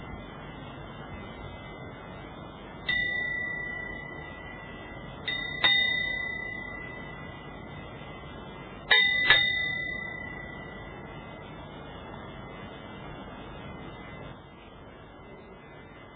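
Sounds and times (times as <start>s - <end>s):
quiet room hum: 0.0s - 16.1s
small meditation bell struck softly to end a meditation: 2.9s - 7.5s, 8.9s - 11.0s.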